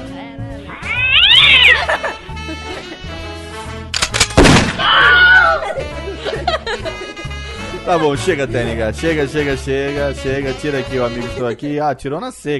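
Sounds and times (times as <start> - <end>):
cat yowling and caterwauling: 0.6 - 2.0, 4.8 - 5.6
laughter: 1.4 - 3.6, 5.0 - 9.2, 10.9 - 11.9
speech: 2.0 - 3.9, 7.9 - 12.5.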